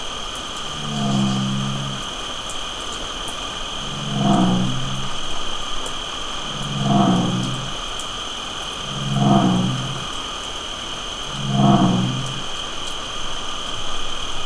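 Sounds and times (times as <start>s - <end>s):
bullfrog croaking slowly: 0.6s - 2.4s, 3.4s - 5.4s, 6.4s - 8.0s, 8.6s - 10.3s, 11.1s - 12.6s.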